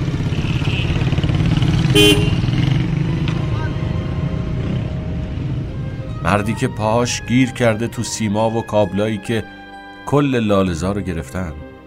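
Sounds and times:
engine buzz: 0.0s - 6.2s
street traffic rumbling: 0.0s - 10.0s
car and motorcycle honks: 0.2s - 2.8s
loud car horn blast: 1.9s - 2.5s
speech: 2.0s - 2.4s, 6.3s - 11.6s.

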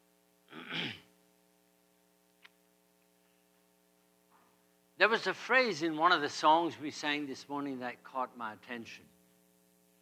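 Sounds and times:
faint steady hum: 0.0s - 10.0s
person sneezing: 0.5s - 1.1s
small click: 2.3s - 3.1s
speech: 5.0s - 9.1s.

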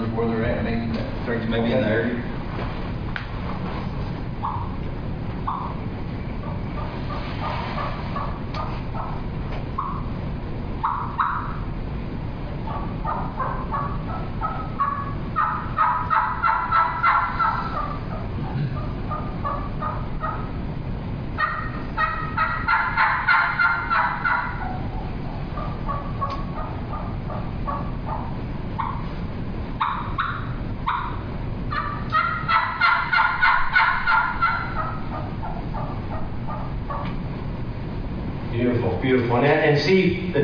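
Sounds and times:
low rumble: 0.0s - 40.4s
speech: 1.3s - 2.8s
imitated wild turkey hen tree call yelps and clucks: 4.3s - 10.2s, 10.8s - 11.8s, 12.6s - 20.7s, 21.3s - 37.3s.

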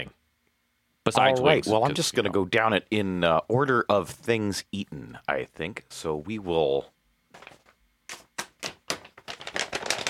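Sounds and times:
speech: 1.0s - 7.0s
paper show notes being shuffled and handled: 7.3s - 10.0s.

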